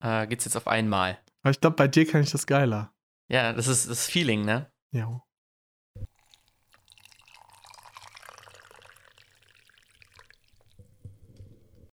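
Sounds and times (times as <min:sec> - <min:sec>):
speech: 0:00.0 - 0:05.3
drink pouring into a glass: 0:06.1 - 0:11.2.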